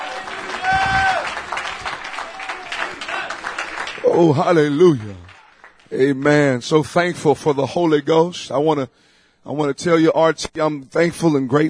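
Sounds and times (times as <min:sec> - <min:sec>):
crowd clapping hands in praise: 0:00.0 - 0:07.8
speech: 0:04.1 - 0:05.3, 0:05.9 - 0:11.6.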